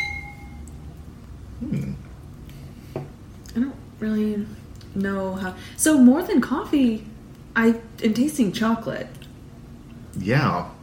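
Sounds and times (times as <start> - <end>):
wine glasses clinking in a toast: 0.0 - 0.6
low room hum: 0.0 - 10.8
speech: 3.6 - 9.2, 10.2 - 10.7.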